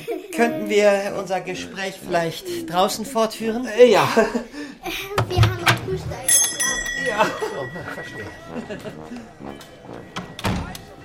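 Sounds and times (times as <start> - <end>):
laughter: 0.0 - 0.7, 3.7 - 5.0, 7.0 - 9.8
speech: 0.4 - 10.2
door opening and banging shut: 10.2 - 10.9.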